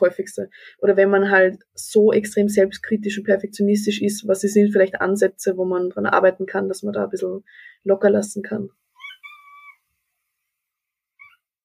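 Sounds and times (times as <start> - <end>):
speech: 0.0 - 8.8
cat meowing: 9.0 - 9.8.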